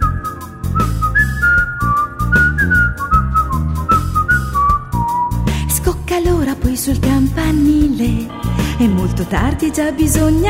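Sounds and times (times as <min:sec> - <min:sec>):
rotisserie vendor whistling a bright wandering melody: 0:00.0 - 0:05.5
steady rhythmic instrumental backing: 0:00.0 - 0:10.4
speech: 0:06.2 - 0:10.4.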